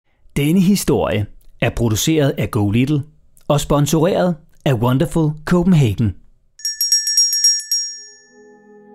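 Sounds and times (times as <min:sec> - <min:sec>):
speech: 0:00.4 - 0:06.2
parliament meeting bell ringing in the Folketing chamber: 0:06.6 - 0:08.6.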